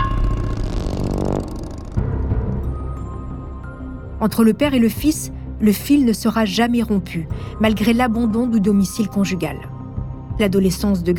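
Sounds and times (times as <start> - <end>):
Triumph motorcycle engine revving and idling: 0.0 - 2.6
speech: 4.2 - 9.7, 10.4 - 11.1.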